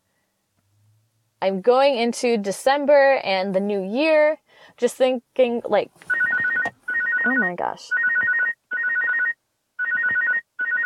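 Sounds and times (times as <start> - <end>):
speech: 1.4 - 6.2, 7.2 - 8.0
phone ringtone from incoming call: 6.1 - 10.8.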